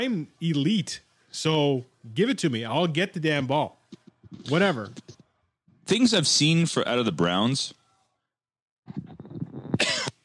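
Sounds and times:
speech: 0:00.0 - 0:05.2, 0:05.9 - 0:07.8
person coughing harshly: 0:09.8 - 0:10.2.

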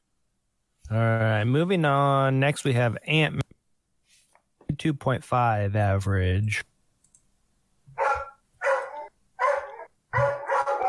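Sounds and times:
speech: 0:00.9 - 0:03.4, 0:04.8 - 0:06.7
dog barking: 0:08.0 - 0:10.8.

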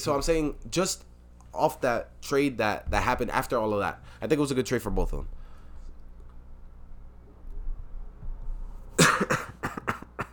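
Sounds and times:
speech: 0:00.0 - 0:05.4
low room noise: 0:00.0 - 0:10.3
person coughing harshly: 0:09.0 - 0:10.3.

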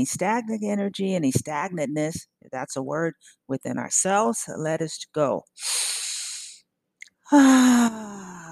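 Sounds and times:
speech: 0:00.0 - 0:06.1, 0:07.3 - 0:08.5
soft airy breath drawn in through the nose in a guided breathing exercise: 0:05.6 - 0:06.6.

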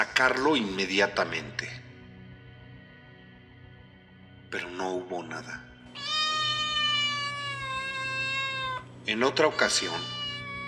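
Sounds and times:
speech: 0:00.0 - 0:01.8, 0:04.5 - 0:05.7, 0:09.0 - 0:10.2
cat meowing in a living room before dawn: 0:06.0 - 0:10.6.

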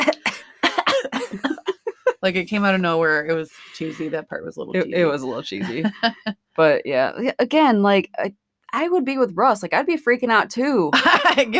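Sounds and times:
person fake coughing with exaggerated theatrical bursts: 0:00.0 - 0:02.1
laughter: 0:01.2 - 0:02.2, 0:05.3 - 0:06.3
speech: 0:02.2 - 0:11.5.

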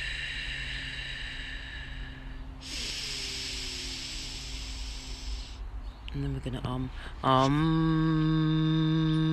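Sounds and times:
breathing in through one nostril with the other nostril covered: 0:00.0 - 0:05.6
speech: 0:06.2 - 0:09.2.

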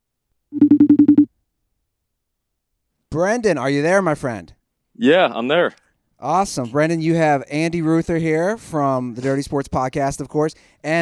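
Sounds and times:
phone ringing tone as a steady pulsing electronic trill: 0:00.5 - 0:01.3
speech: 0:03.2 - 0:11.0.

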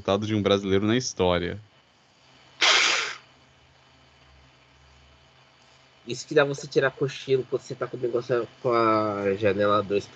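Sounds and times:
speech: 0:00.0 - 0:01.7, 0:06.1 - 0:10.1
single loud sneeze: 0:02.6 - 0:03.2.

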